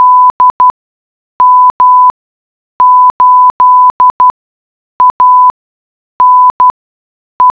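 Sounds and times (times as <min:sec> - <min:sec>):
morse code beeps: 0:00.0 - 0:00.7, 0:01.4 - 0:02.1, 0:02.8 - 0:04.3, 0:05.0 - 0:05.5, 0:06.2 - 0:06.7.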